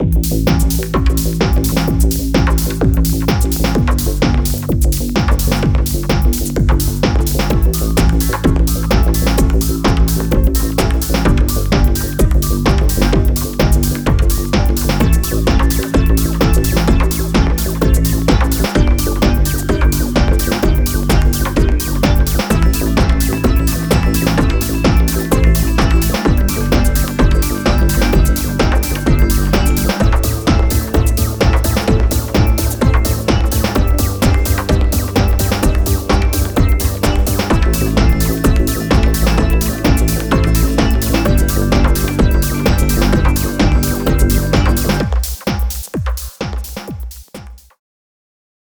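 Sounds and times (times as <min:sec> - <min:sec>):
dance music: 0:00.0 - 0:47.8.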